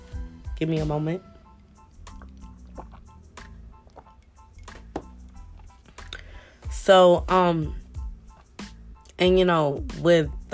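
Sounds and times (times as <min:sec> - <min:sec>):
speech: 0:00.6 - 0:01.3, 0:06.9 - 0:07.8, 0:09.2 - 0:10.5
person sipping water: 0:01.5 - 0:06.4
small gulps: 0:01.6 - 0:06.5
soft wet clicks and slurps: 0:02.0 - 0:04.8.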